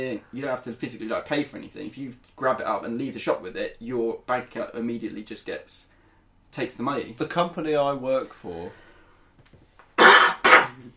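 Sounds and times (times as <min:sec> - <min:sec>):
speech: 0:00.0 - 0:05.9, 0:06.5 - 0:08.8
unwell person coughing harshly: 0:10.0 - 0:10.9.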